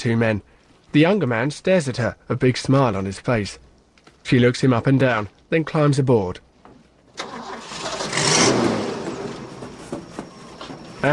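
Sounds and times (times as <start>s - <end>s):
speech: 0.0s - 3.6s, 4.2s - 6.5s
brown truck engine starting in a parking lot: 7.2s - 11.1s.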